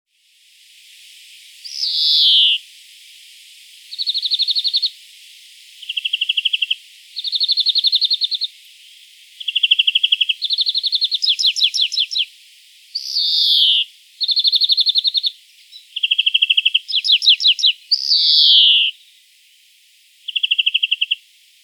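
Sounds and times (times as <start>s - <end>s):
European greenfinch Chloris chloris trilling: 1.6s - 2.6s, 5.8s - 8.5s, 9.4s - 12.3s, 13.0s - 19.0s, 20.3s - 21.2s.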